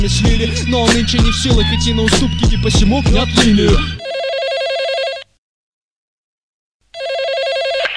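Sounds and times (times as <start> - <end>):
speech: 0.0 - 4.1
phone ringback tone for a call to a mobile: 4.0 - 5.3, 7.0 - 7.9.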